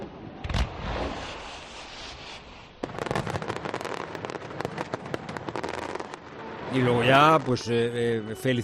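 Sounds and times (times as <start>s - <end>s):
fireworks booming outdoors: 0.4s - 6.4s
fireworks crackling pops and bangs: 0.4s - 6.4s
rushing hiss of fireworks: 0.9s - 3.0s
speech: 6.7s - 8.6s.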